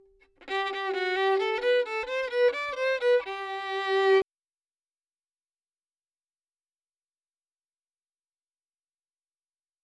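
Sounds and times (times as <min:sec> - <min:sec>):
dry violin melody in G major in 3-4 time: 0:00.0 - 0:04.2.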